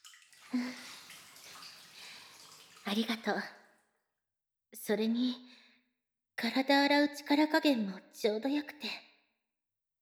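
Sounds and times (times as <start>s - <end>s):
hot bath water swishing in a bathtub: 0.0s - 3.3s
speech: 0.5s - 0.9s, 2.9s - 3.6s, 4.7s - 5.6s, 6.4s - 9.1s.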